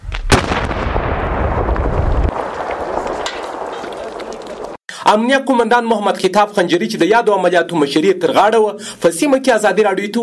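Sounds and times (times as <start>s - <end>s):
pile of collected landmines detonated by soldiers: 0.2s - 4.8s
speech: 5.1s - 10.2s.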